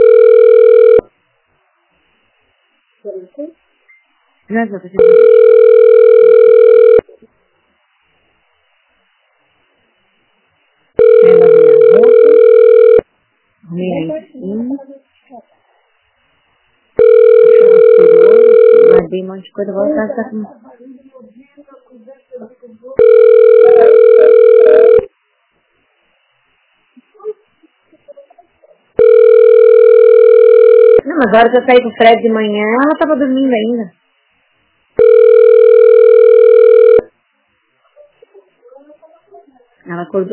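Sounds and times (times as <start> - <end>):
telephone line tone beeps while on hold: 0.0 - 1.1, 5.0 - 7.0, 11.0 - 13.0, 17.0 - 19.0, 23.0 - 25.1, 29.0 - 31.0, 35.0 - 37.1
speech: 4.5 - 5.6, 19.2 - 20.7, 31.3 - 34.0, 40.1 - 40.3.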